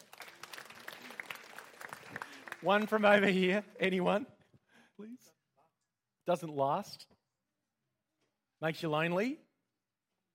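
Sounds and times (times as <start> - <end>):
audience clapping: 0.0 - 4.2
speech: 2.6 - 4.4, 6.3 - 7.1, 8.6 - 9.4.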